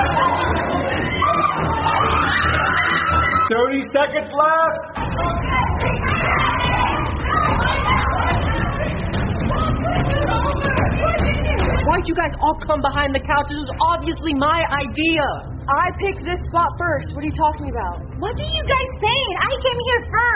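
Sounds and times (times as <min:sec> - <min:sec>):
many voices shouting and yelling muffled from another room: 0:00.0 - 0:11.9
speech: 0:03.9 - 0:05.5, 0:12.0 - 0:20.3.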